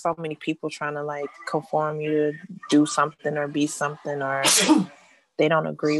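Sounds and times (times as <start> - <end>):
speech: 0.0 - 5.9
person sneezing: 4.4 - 4.9.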